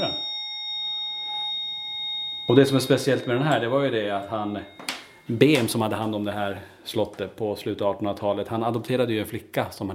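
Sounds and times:
old brown rusty reception bell ding in a castle reception: 0.0s - 6.1s
speech: 2.5s - 9.9s.

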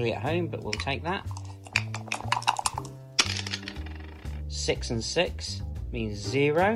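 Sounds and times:
speech: 0.0s - 1.4s, 4.6s - 6.7s
dice clattering across a backgammon board: 1.3s - 4.3s.

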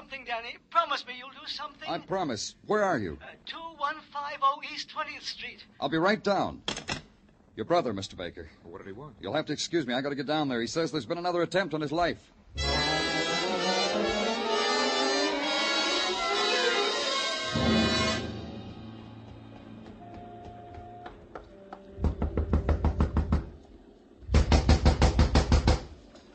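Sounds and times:
dense wash of sound: 0.0s - 26.3s
speech: 0.1s - 6.9s, 7.6s - 12.8s
rapid knocking on a door: 22.0s - 23.6s, 24.3s - 25.9s.

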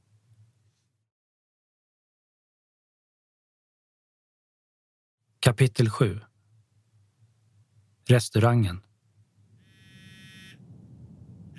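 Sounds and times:
speech: 5.4s - 6.3s, 8.1s - 8.9s
mobile phone alarm ringing with high electronic buzzing tone: 9.7s - 10.6s
low rumbling background: 10.6s - 11.5s.

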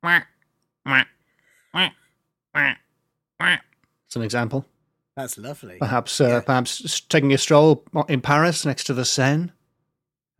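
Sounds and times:
person imitating duck quacks: 0.0s - 0.3s, 0.9s - 2.0s, 2.6s - 3.7s
speech: 0.0s - 1.2s, 1.8s - 2.0s, 3.5s - 9.6s.

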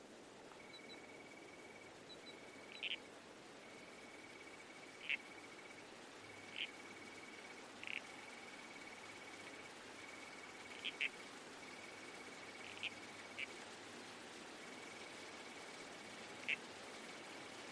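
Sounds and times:
soft hiss: 0.0s - 17.6s
faint thin steady insect tone: 0.5s - 17.6s
red-crowned toadlet squelching calls by a creek: 2.6s - 3.0s, 5.0s - 5.3s, 6.4s - 6.8s, 7.8s - 8.1s, 10.6s - 11.2s, 12.5s - 13.5s, 16.3s - 16.6s.

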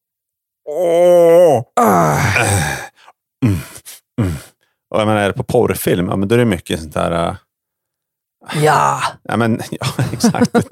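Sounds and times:
speech: 0.7s - 1.2s, 5.0s - 7.5s, 8.5s - 10.6s
voice imitating a woman's moan: 0.7s - 4.4s
laughter: 9.8s - 10.6s.

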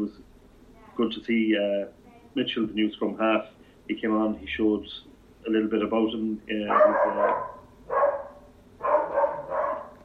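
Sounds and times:
speech: 1.0s - 7.5s
dog barking: 6.7s - 10.0s.

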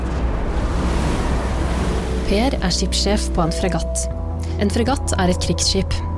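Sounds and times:
heavy foaming ocean waves roaring: 0.0s - 4.0s
wind blowing: 0.0s - 4.4s
speech: 2.3s - 6.1s.

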